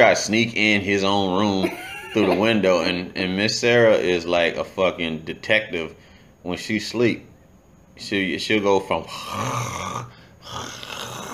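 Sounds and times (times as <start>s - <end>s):
speech: 0.0s - 7.3s, 8.0s - 11.2s
person imitating snoring: 9.0s - 11.3s.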